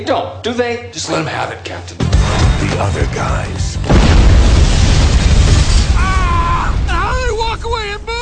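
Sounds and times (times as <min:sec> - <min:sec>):
speech: 0:00.0 - 0:04.5
loud deep explosion in a movie trailer: 0:03.7 - 0:08.2.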